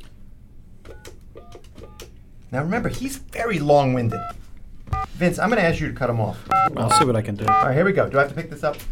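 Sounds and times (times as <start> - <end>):
speech: 2.5 - 4.4, 5.2 - 8.9
electronic touch-tone phone keypad beeps: 6.6 - 7.6.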